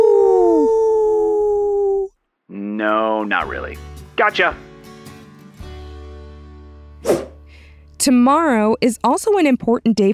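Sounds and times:
person howling at the moon like a wolf: 0.0 - 2.1
speech: 2.8 - 4.7, 8.0 - 10.1.

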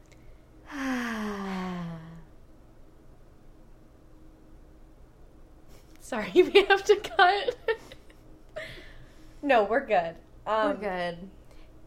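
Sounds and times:
deep breath let out as a long voiced sigh: 0.7 - 2.3
speech: 6.1 - 7.7, 9.4 - 11.4.

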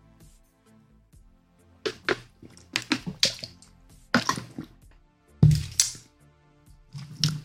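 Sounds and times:
wet liquid sounds: 1.9 - 6.0, 6.9 - 7.4.

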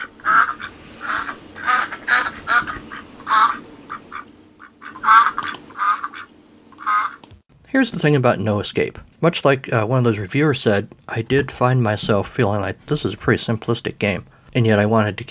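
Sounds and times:
duck quacking: 0.0 - 7.2
speech: 7.7 - 15.2.

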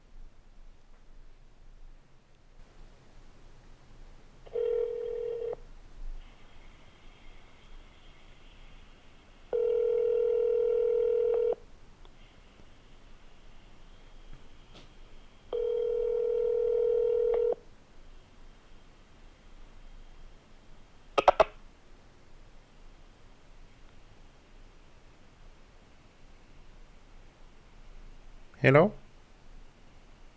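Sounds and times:
faint hiss: 0.0 - 30.3
longer steady telephone line tones: 2.6 - 5.7, 6.3 - 11.7, 15.3 - 17.7
short telephone line beep: 4.5 - 5.6, 9.6 - 11.6, 15.5 - 17.6
speech: 28.6 - 29.0.

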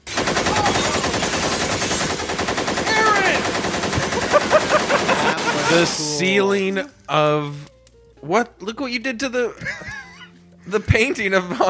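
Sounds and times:
rapid burst of gunfire from a Tommy gun: 0.0 - 5.8
laughter: 3.9 - 6.1, 9.5 - 11.6
speech: 5.7 - 9.9, 10.7 - 11.6.

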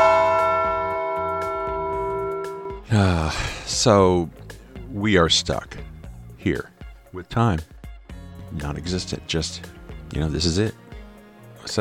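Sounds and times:
large bell tolling: 0.0 - 2.9
speech: 2.9 - 5.8, 6.4 - 7.7, 8.6 - 10.8.

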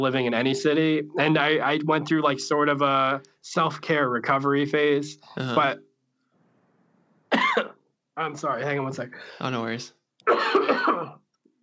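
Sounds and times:
speech: 0.0 - 5.9, 7.6 - 11.2
person coughing: 7.3 - 7.8, 10.2 - 11.3.

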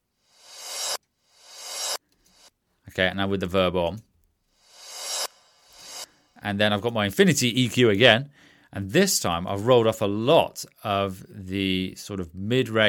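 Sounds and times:
reversed CD transition effect noise swells: 0.3 - 2.0, 4.6 - 6.1
speech: 3.0 - 4.1, 6.4 - 12.8.

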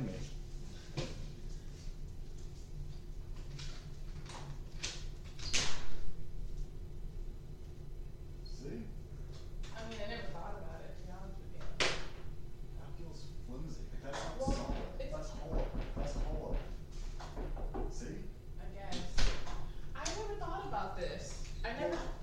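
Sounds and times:
low steady hum: 0.0 - 22.2
lightweight hollow interior door being opened and handled: 14.4 - 16.6.

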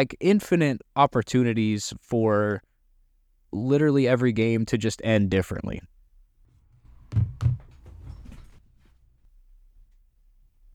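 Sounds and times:
speech: 0.0 - 2.7, 3.5 - 5.9, 7.1 - 7.6
faint rattling and shuffling: 6.5 - 9.3
cat banging against a door: 6.7 - 8.9.

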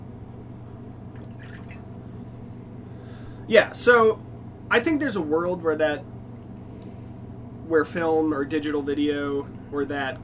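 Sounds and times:
steady low hum: 0.0 - 10.2
water sloshing and dripping in a cup while rinsing cups: 1.2 - 2.0
speech: 3.5 - 6.1, 7.7 - 10.2.

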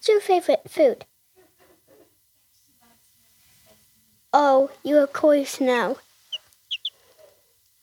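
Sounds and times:
speech: 0.0 - 1.1, 4.4 - 6.1
baby chick chirping in high-pitched peeps: 6.3 - 7.8.

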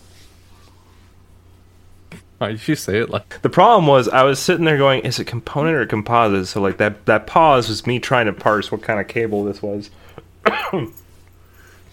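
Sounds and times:
speech: 2.1 - 11.0
person coughing into the microphone: 10.4 - 11.0.

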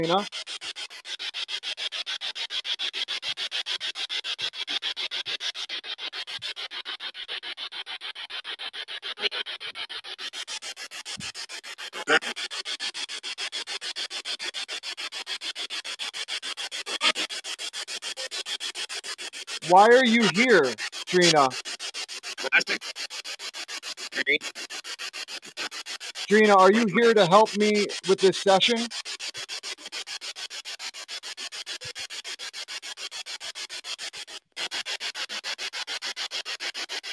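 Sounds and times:
spirit box radio receiver sweeping static with rapid clicks: 0.0 - 0.3, 9.2 - 9.4, 12.0 - 12.4, 16.9 - 17.3, 19.6 - 21.6, 22.4 - 22.9, 24.2 - 24.6, 26.3 - 28.9
speech: 0.0 - 0.7, 19.7 - 21.6, 24.3 - 24.5, 26.3 - 29.0.

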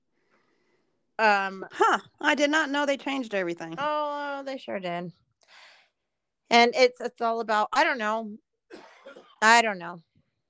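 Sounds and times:
speech: 1.2 - 5.5, 6.5 - 10.1
person coughing: 8.7 - 9.4.

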